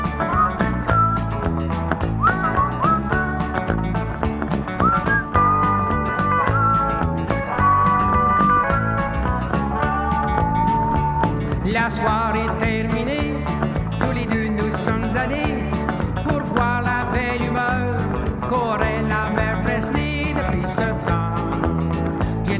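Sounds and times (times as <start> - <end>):
whistled melody with sliding pitches: 0.0 - 4.0, 4.6 - 12.2
upbeat band accompaniment with regular drum beats: 0.0 - 22.5.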